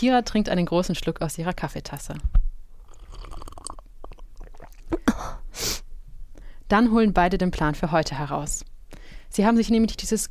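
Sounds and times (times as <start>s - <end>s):
speech: 0.0s - 2.5s, 6.7s - 8.7s, 9.3s - 10.2s
person biting and chewing cake in a café: 2.8s - 5.1s.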